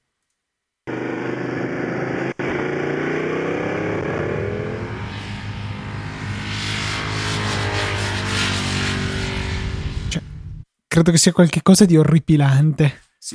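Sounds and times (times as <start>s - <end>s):
Japanese motorcycle engine starting up and revving: 0.9s - 10.6s
speech: 11.0s - 13.3s.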